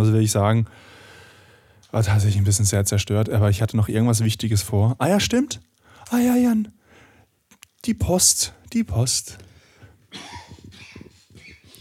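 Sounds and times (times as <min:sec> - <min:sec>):
speech: 0:00.0 - 0:01.0, 0:01.9 - 0:06.8, 0:07.8 - 0:09.5
rough cough in harsh throaty hacks: 0:10.1 - 0:11.8.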